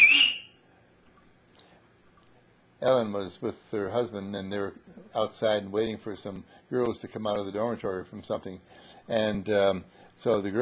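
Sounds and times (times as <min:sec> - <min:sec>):
loud shrill two-finger mouth whistle: 0:00.0 - 0:00.6
speech: 0:02.8 - 0:10.6.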